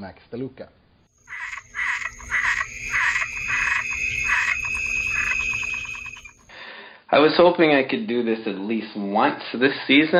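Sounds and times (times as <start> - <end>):
speech: 0.0 - 0.8, 7.1 - 10.1
frog croaking: 1.2 - 6.5.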